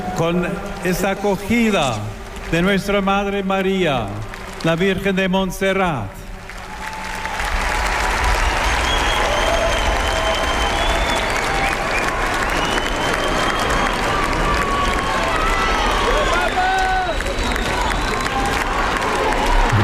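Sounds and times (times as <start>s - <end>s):
large crowd of faithful cheering and chanting: 0.0s - 4.7s, 6.5s - 19.8s
speech: 0.2s - 6.2s
clapping: 4.2s - 5.0s, 6.4s - 19.8s.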